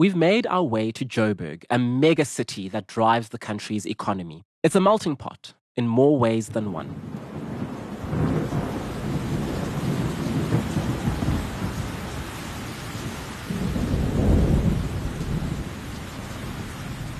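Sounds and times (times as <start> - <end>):
speech: 0.0 - 7.4
deep rolls of thunder in Johannesburg South Africa: 6.8 - 17.1
steady rain hissing in a thunderstorm in Johannesburg South Africa: 6.9 - 17.1.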